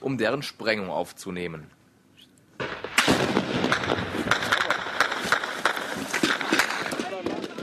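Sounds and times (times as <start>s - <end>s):
speech: 0.0s - 1.8s
gunfire from rifles and rocket launchers: 2.6s - 7.6s.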